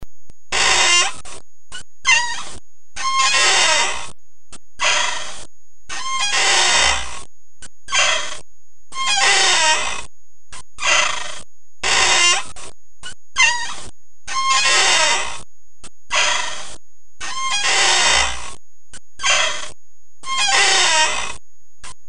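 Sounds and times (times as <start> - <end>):
window creaking when blown by wind: 0.6 - 1.4, 2.1 - 4.2, 6.0 - 7.3, 9.0 - 10.1, 10.8 - 12.7, 13.4 - 15.5, 16.2 - 18.6, 19.2 - 21.4.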